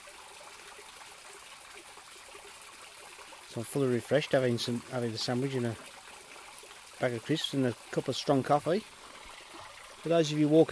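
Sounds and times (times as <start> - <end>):
small woodland stream trickling and burbling: 0.0 - 10.7
speech: 3.6 - 5.9, 7.0 - 9.0, 10.0 - 10.7.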